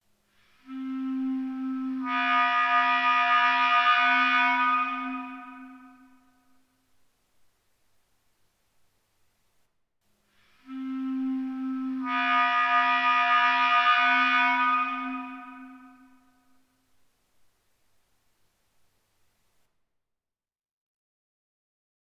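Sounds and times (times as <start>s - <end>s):
clarinet noise: 0.6s - 6.2s, 10.6s - 16.3s.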